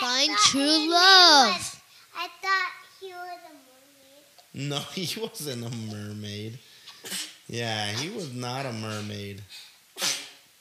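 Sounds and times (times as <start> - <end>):
speech: 0.2 - 3.7, 4.6 - 10.2
laughter: 4.6 - 6.1
quick breathy sneeze: 7.0 - 8.2, 10.0 - 10.5.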